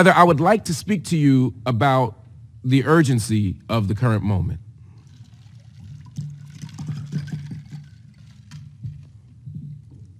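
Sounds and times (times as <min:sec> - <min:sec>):
speech: 0:00.0 - 0:04.6
water pouring into a glass with gurgling splash: 0:04.9 - 0:09.2.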